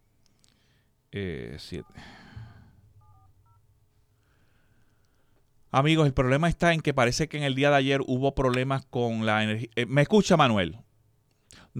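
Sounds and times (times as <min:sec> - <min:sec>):
low hiss: 0:00.0 - 0:11.7
speech: 0:01.2 - 0:02.2, 0:05.7 - 0:10.8
telephone touch-tone dialing beeps: 0:03.0 - 0:03.6.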